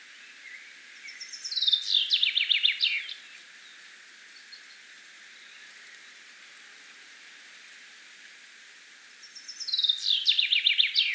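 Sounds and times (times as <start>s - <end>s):
Common chaffinch Fringilla coelebs singing: 0.0s - 6.2s, 9.2s - 11.1s.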